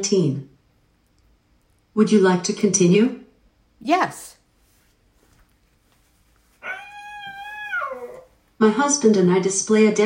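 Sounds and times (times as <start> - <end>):
speech: 0.0 - 0.5, 2.0 - 3.2, 3.8 - 4.4, 8.6 - 10.0
domestic cat meowing: 6.6 - 8.4.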